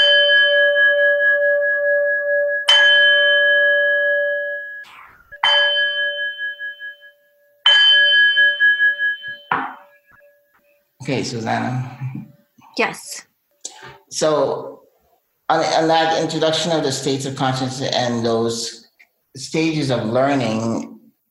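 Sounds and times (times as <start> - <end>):
singing bowl being struck and ringing: 0.0 - 10.9
speech: 11.1 - 12.2, 12.8 - 13.3, 14.1 - 14.7, 15.5 - 18.8, 19.4 - 20.9.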